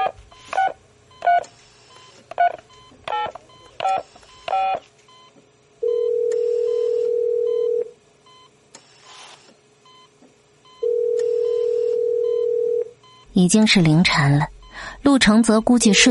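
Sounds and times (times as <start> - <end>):
telephone keypad dialing beeps: 0.0 - 5.3, 5.9 - 8.5, 10.7 - 13.3
telephone ringback tone on a call: 5.8 - 7.9, 10.8 - 12.9
speech: 13.4 - 16.1.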